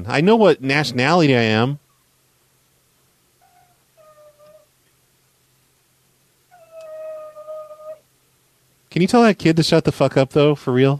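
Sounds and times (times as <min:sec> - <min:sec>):
speech: 0:00.0 - 0:01.8, 0:09.0 - 0:10.9
dog howling in wavering tones: 0:03.4 - 0:04.7, 0:06.5 - 0:08.0.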